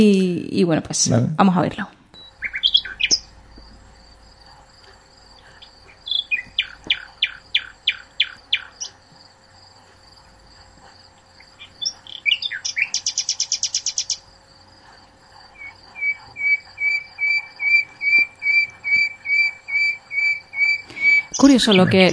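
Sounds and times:
speech: 0:00.0 - 0:02.0, 0:21.5 - 0:22.1
faint steady background: 0:00.0 - 0:22.1
bird singing whistled phrases and trills: 0:02.2 - 0:09.2, 0:11.3 - 0:14.4, 0:15.4 - 0:22.1.

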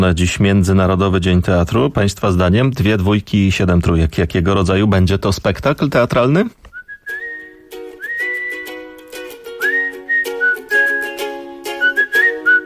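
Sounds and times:
speech: 0:00.0 - 0:06.7
person whistling a lively tune with sliding, bending notes: 0:06.7 - 0:12.6.

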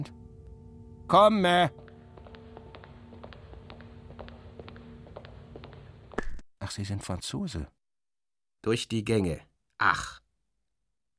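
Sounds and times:
speech: 0:01.1 - 0:01.8, 0:06.7 - 0:07.8, 0:08.6 - 0:10.2
man's long footsteps outside: 0:01.5 - 0:06.4.

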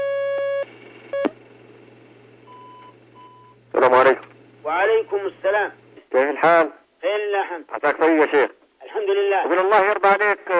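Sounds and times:
telephone line beeps as a call comes in to a call-in program: 0:00.0 - 0:01.3, 0:02.5 - 0:03.6
low constant hum: 0:00.0 - 0:10.5
speech: 0:05.0 - 0:10.5.

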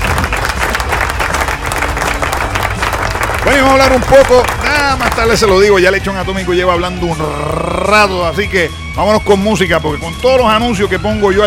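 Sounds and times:
crowd applauding: 0:00.0 - 0:05.8
speech: 0:03.5 - 0:11.4.

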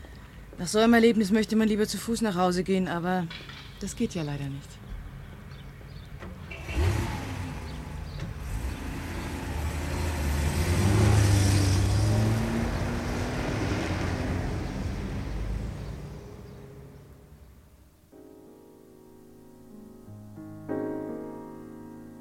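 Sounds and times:
speech: 0:00.6 - 0:04.8
car engine as a car drives off: 0:06.2 - 0:17.6.

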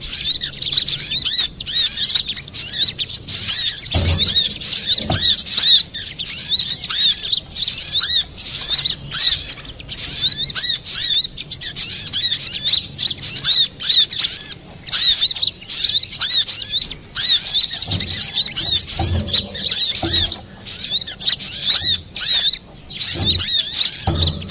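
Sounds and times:
little spiderhunter giving shrill high chirps and slurred notes: 0:00.0 - 0:24.4
faint low thumps: 0:17.9 - 0:20.8, 0:21.8 - 0:24.4.

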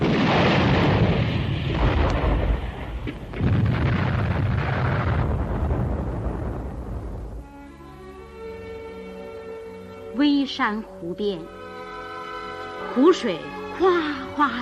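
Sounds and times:
enemy artillery shells exploding on an abandoned battle position: 0:00.0 - 0:07.4
speech: 0:10.6 - 0:11.6, 0:12.9 - 0:14.6.

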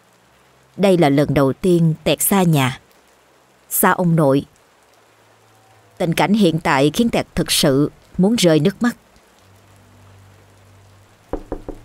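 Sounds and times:
speech: 0:00.8 - 0:02.8, 0:03.7 - 0:04.5, 0:06.0 - 0:09.0
knocking on a room door: 0:11.3 - 0:11.8.

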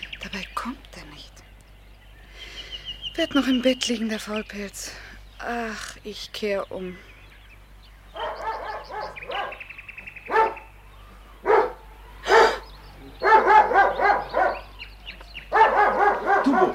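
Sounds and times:
speech: 0:00.4 - 0:00.9, 0:03.2 - 0:07.1
dog barking and yipping: 0:08.2 - 0:09.6, 0:10.3 - 0:10.7, 0:11.4 - 0:12.6, 0:13.2 - 0:14.7, 0:15.5 - 0:16.7.

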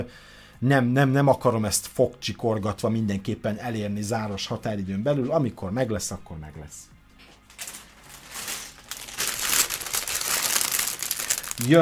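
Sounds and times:
speech: 0:00.0 - 0:06.9, 0:11.6 - 0:11.7
plastic bag being crinkled open: 0:07.5 - 0:11.7.

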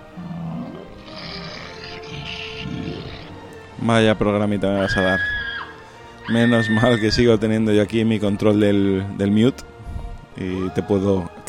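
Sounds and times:
person imitating a dinosaur roar with an electronic noise-maker: 0:00.0 - 0:03.5
speech: 0:03.8 - 0:05.4, 0:06.3 - 0:09.7, 0:10.4 - 0:11.4.

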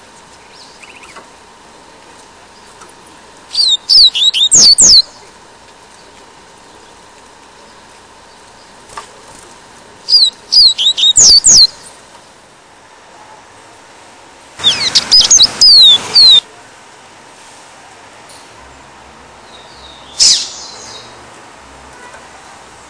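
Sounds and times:
faint steady hum: 0:00.0 - 0:22.8
double-collared seedeater whistled song: 0:00.4 - 0:01.2, 0:03.5 - 0:05.2, 0:10.1 - 0:11.9, 0:14.6 - 0:16.4, 0:19.5 - 0:21.1.

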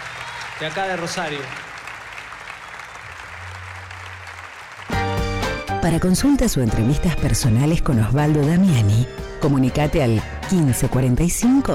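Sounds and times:
audience applause after a live music performance: 0:00.0 - 0:05.6
speech: 0:00.6 - 0:01.6, 0:05.8 - 0:11.7.

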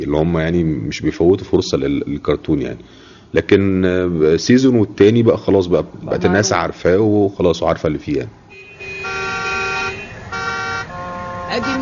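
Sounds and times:
speech: 0:00.0 - 0:08.4, 0:11.5 - 0:11.8
car horns honking in a traffic jam: 0:08.5 - 0:11.8.

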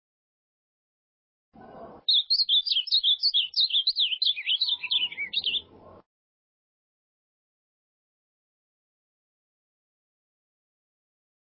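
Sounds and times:
ultramarine grosbeak singing a jumbled stream of whistled notes: 0:02.0 - 0:05.9.

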